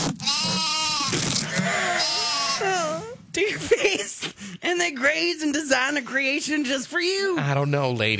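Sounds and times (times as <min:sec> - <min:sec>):
lambs bleating: 0:00.2 - 0:01.2, 0:01.9 - 0:02.9
speech: 0:03.4 - 0:08.1.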